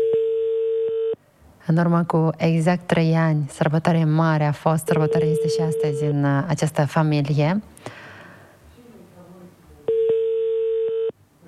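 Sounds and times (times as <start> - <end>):
telephone busy tone on a call: 0.0 - 1.2, 4.9 - 6.2, 9.9 - 11.2
speech: 1.7 - 8.0.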